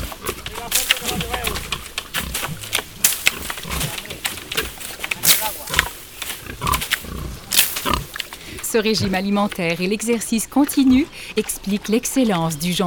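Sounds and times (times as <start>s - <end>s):
fallen ripe acorns crunching and snapping under feeding pigs: 0.0s - 8.8s
pigs grunting and snuffling while feeding on acorns: 0.0s - 9.2s
speech: 8.7s - 12.8s.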